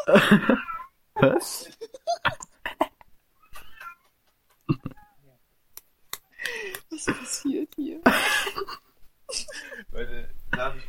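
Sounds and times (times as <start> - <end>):
speech: 0.0 - 1.8
laughter: 0.0 - 5.0, 6.3 - 9.8
cats fighting, yowling and meowing in a wavering caterwaul: 3.4 - 4.2.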